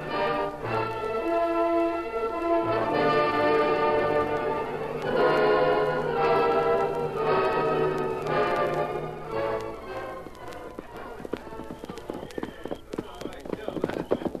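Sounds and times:
sustained tonal sound: 0.0 - 11.5
horse hooves clopping on a trail: 0.0 - 14.3.

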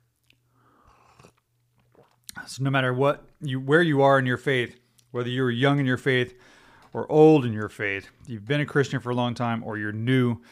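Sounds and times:
person sipping coffee: 0.2 - 2.6
speech: 2.5 - 10.4.

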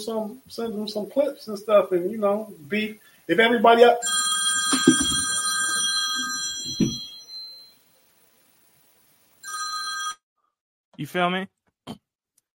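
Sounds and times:
speech: 0.0 - 5.2, 11.0 - 12.0
phone ringing with electronic chime: 3.9 - 7.8, 9.4 - 10.2.

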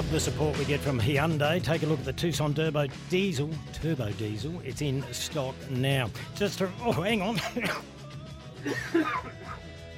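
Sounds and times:
speech: 0.1 - 8.0, 8.6 - 9.6
person clearing their throat: 7.4 - 7.9, 8.7 - 9.6
person coughing: 7.4 - 7.9, 8.6 - 9.6
laughter: 8.6 - 9.9.

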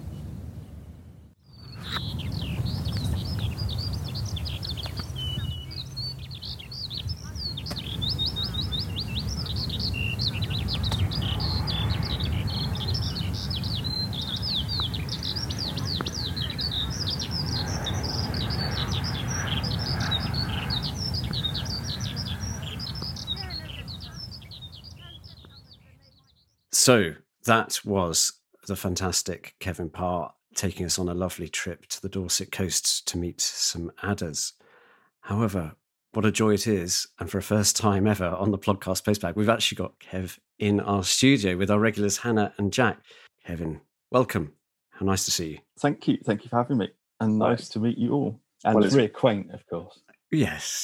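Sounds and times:
skylark singing beside the sea on the Dorset coast: 1.5 - 26.6
speech: 26.8 - 34.6, 35.2 - 50.8.

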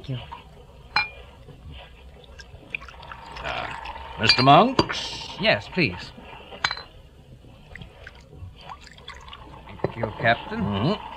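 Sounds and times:
speech: 0.0 - 0.4, 4.2 - 6.2, 10.0 - 11.1
glass clinking: 0.9 - 1.2, 3.5 - 5.0, 6.6 - 6.9
wine poured into a glass: 2.2 - 4.3, 7.8 - 9.7.

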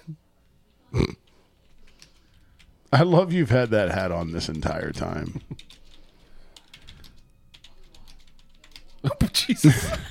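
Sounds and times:
typing on a computer keyboard: 1.2 - 2.7, 4.4 - 9.1
speech: 2.9 - 5.8, 9.5 - 10.1
laughter: 9.1 - 10.1.

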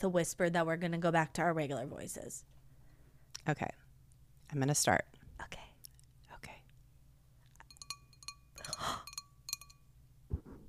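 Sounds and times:
speech: 0.0 - 2.5, 3.4 - 3.8, 4.5 - 5.7
glass clinking: 7.6 - 9.9.

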